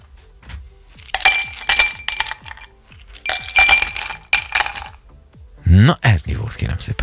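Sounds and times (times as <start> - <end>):
ice cubes tumbling into a glass: 1.1 - 5.0
speech: 5.7 - 7.0.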